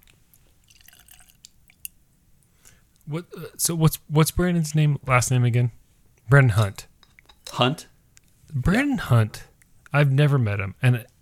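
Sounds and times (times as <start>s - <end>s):
liquid dribbling and dripping: 0.4s - 2.0s
liquid trickling from a sample bottle: 0.6s - 2.0s
speech: 3.1s - 6.9s, 7.6s - 7.9s, 8.5s - 11.1s.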